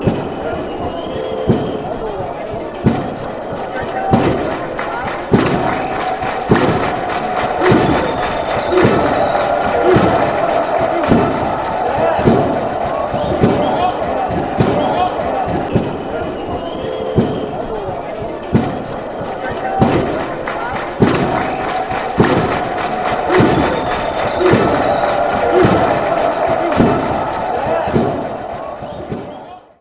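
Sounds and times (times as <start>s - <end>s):
clap: 0.0s - 29.8s
drum: 5.2s - 16.0s, 19.7s - 29.3s.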